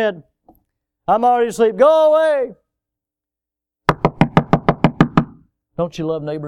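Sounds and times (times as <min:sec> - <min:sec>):
speech: 0:00.0 - 0:00.3, 0:01.1 - 0:02.6, 0:05.8 - 0:06.4
firm knocking on a door: 0:03.9 - 0:05.5.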